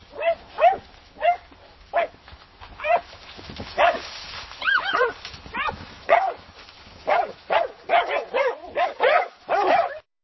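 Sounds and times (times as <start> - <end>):
dogs barking: 0.1 - 2.1, 3.8 - 4.0, 4.8 - 6.4, 7.0 - 10.0.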